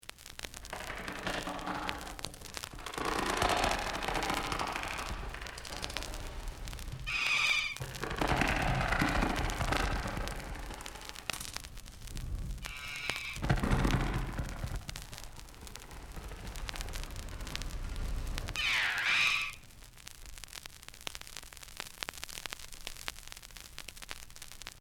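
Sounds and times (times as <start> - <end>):
ghostly sounds: 0.4 - 19.6
bats: 0.7 - 11.6, 12.6 - 17.6, 18.4 - 19.6.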